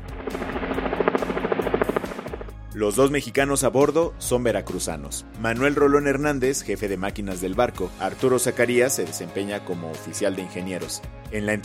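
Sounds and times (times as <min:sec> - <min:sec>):
helicopter rotor chopping: 0:00.0 - 0:02.6
speech: 0:02.8 - 0:11.6.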